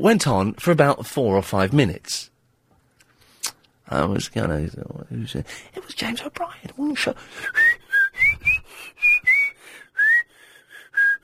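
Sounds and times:
speech: 0.0 - 2.3, 3.9 - 8.3
person whistling short wandering tuneless notes: 7.4 - 11.2.

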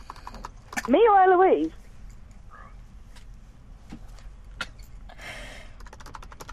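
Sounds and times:
typing on a computer keyboard: 0.0 - 1.1, 5.7 - 6.5
low hum: 0.0 - 6.5
speech: 0.8 - 1.8.

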